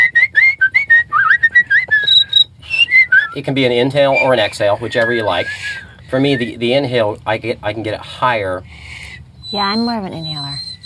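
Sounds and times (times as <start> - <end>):
person whistling short notes imitating a cricket chirp: 0.0 - 3.4, 4.1 - 6.6
low steady hum: 0.0 - 10.8
speech: 3.4 - 8.8, 9.5 - 10.6.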